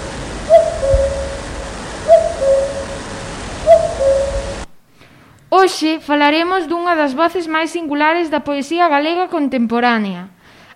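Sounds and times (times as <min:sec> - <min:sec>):
common cuckoo calling: 0:00.0 - 0:04.7
steady hiss of noise: 0:00.0 - 0:06.6
speech: 0:05.7 - 0:10.7.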